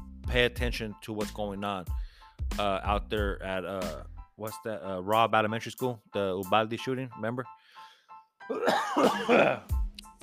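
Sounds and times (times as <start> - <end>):
speech: 0.4 - 7.6, 8.5 - 10.2
harsh coughing: 8.5 - 9.7.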